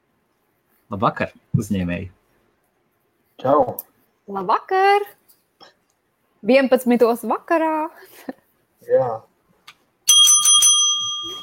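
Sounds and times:
speech: 0:00.9 - 0:02.2, 0:03.4 - 0:05.7, 0:06.4 - 0:09.3
small metal bell ringing: 0:10.1 - 0:11.4.

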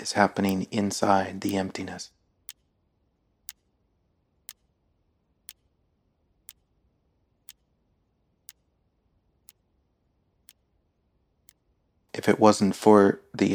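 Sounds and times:
clock ticking: 0:00.0 - 0:01.8, 0:04.4 - 0:04.7, 0:05.4 - 0:05.7, 0:07.5 - 0:07.7
speech: 0:00.0 - 0:02.2, 0:12.2 - 0:13.5.

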